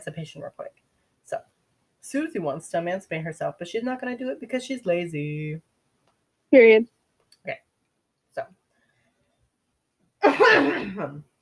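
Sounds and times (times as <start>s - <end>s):
speech: 0.0s - 5.7s, 6.5s - 7.6s, 8.4s - 8.6s, 10.2s - 11.3s
person coughing with phlegm after cold drinks and milk: 10.2s - 11.2s.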